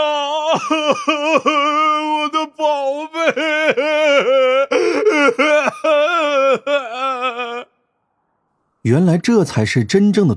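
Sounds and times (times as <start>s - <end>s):
speech: 0.0s - 6.7s, 8.9s - 10.3s
man crying loudly: 0.0s - 7.8s.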